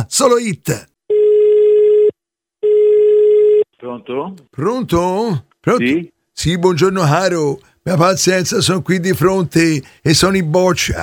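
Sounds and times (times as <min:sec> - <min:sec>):
speech: 0:00.0 - 0:00.9, 0:03.8 - 0:11.0
telephone ringback tone on a radio call-in line: 0:01.1 - 0:03.6.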